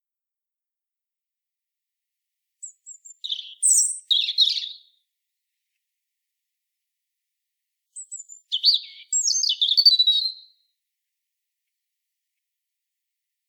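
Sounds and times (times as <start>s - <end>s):
European robin Erithacus rubecula song: 2.6s - 5.1s, 7.9s - 10.7s.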